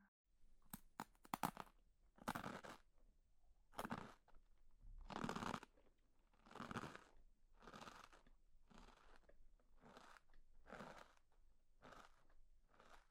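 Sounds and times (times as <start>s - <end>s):
crunchy chewing of food: 0.7s - 1.7s, 2.3s - 2.8s, 3.8s - 4.2s, 5.1s - 13.0s.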